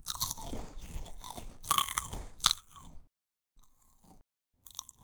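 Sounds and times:
light crunch: 0.0 - 3.0.

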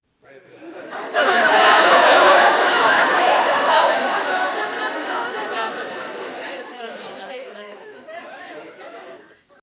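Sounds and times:
laughter: 0.5 - 9.6
audience: 0.6 - 9.4.

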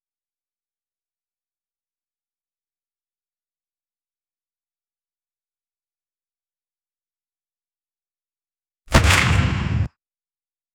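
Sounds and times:
gunshot in a wild west setting: 8.9 - 9.9.

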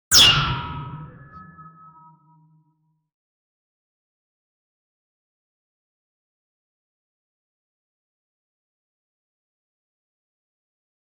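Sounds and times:
laser impact on an asteroid: 0.1 - 2.2.

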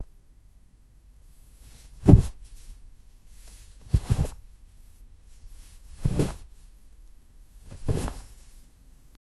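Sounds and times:
pillow poof: 1.9 - 2.4, 3.8 - 4.4, 5.9 - 6.5, 7.7 - 8.4.

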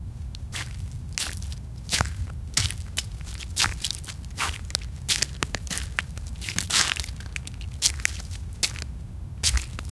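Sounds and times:
footsteps in squishy mud: 0.2 - 9.9.

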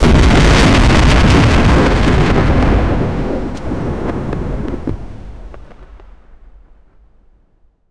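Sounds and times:
debris scattering in all directions: 0.0 - 3.0
large explosion: 0.0 - 6.6.

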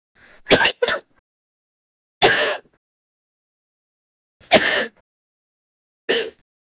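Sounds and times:
person sneezing: 0.4 - 1.1, 2.2 - 2.7, 4.4 - 5.0, 6.1 - 6.4.

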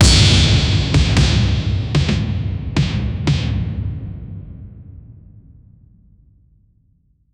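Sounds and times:
heavy war drums: 0.0 - 5.6.

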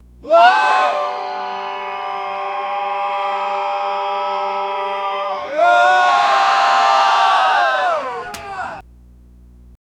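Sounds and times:
massive gospel church choir: 0.3 - 8.1.

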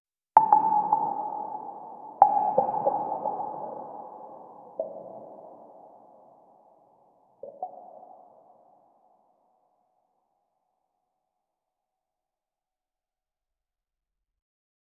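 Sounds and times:
single water drop falling: 0.4 - 6.1, 7.4 - 8.2.

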